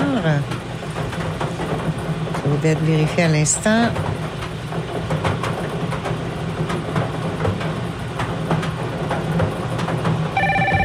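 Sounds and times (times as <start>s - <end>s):
rumbling clattering background: 0.0s - 10.8s
speech: 0.2s - 0.6s, 2.6s - 4.2s
telephone ringing during a radio bingo game: 10.4s - 10.8s.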